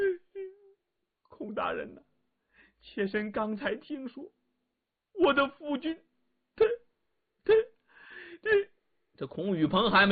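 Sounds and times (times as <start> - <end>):
thin whimpering moan: 0.0 - 0.8
voice imitating a woman sobbing and weeping: 0.0 - 0.8, 6.6 - 8.8
speech: 1.6 - 2.1, 2.8 - 4.4, 5.2 - 6.7, 7.4 - 7.7, 8.4 - 10.1.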